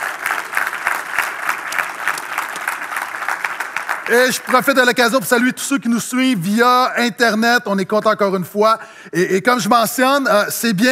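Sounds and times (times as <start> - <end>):
church audience applauding: 0.0 - 5.2
speech: 4.1 - 10.9.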